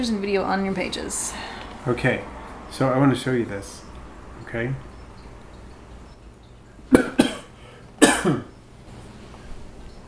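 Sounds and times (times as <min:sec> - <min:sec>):
speech: 0:00.0 - 0:04.9
coughing: 0:06.9 - 0:08.5.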